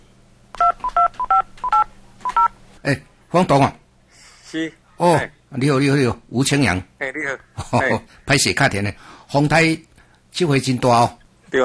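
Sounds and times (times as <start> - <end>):
faint hum: 0.0 - 11.6
telephone keypad tones as a phone call is dialed: 0.6 - 2.5
speech: 2.8 - 3.8, 4.5 - 11.6.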